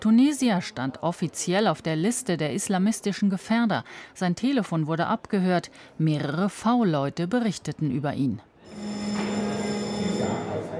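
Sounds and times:
speech: 0.0 - 9.0
electric bell ringing to call members of parliament to a vote: 8.7 - 10.7.

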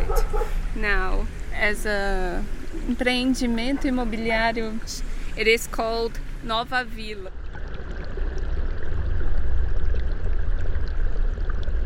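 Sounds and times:
speech: 0.8 - 7.4
sewage water pouring into a spring-fed stream: 7.3 - 11.8.

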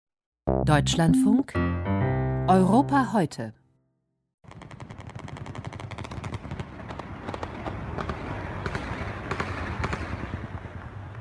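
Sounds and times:
speech: 0.7 - 1.9, 2.5 - 3.6
scattered sharp shots during a coup attempt in Istanbul: 4.4 - 10.7
automatic gunfire during a coup attempt in Istanbul: 4.5 - 10.5
constant rumbling outdoor noise: 4.5 - 11.1.

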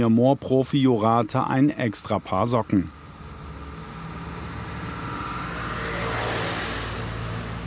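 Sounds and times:
speech: 0.0 - 3.0
car engine low rumble heard from inside: 0.0 - 7.6
road noise: 0.0 - 7.6
tire hiss: 2.1 - 7.6.

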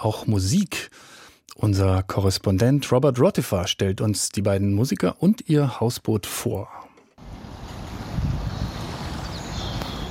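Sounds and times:
speech: 0.0 - 6.8
wind beside a canal: 6.4 - 10.0
light ticks: 9.7 - 10.0.

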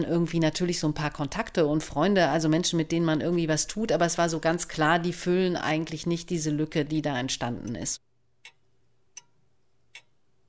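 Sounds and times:
speech: 0.0 - 8.0
old hand-wound standing pendulum clock ticking: 8.4 - 10.2.

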